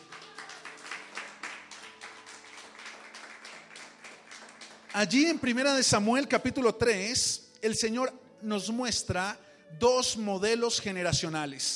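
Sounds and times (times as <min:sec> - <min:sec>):
crowd applauding in a large room: 0:00.0 - 0:05.6
speech: 0:05.0 - 0:11.7.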